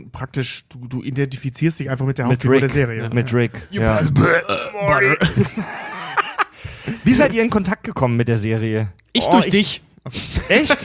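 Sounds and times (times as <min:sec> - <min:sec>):
speech: 0:00.1 - 0:05.9, 0:06.6 - 0:10.8
person burping mid-sentence: 0:03.8 - 0:05.4
laughter: 0:05.0 - 0:07.4.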